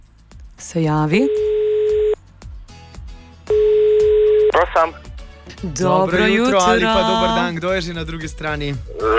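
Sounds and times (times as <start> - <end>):
speech: 0.6 - 1.5, 4.6 - 9.1
telephone ringback tone: 1.3 - 2.2, 3.5 - 4.6.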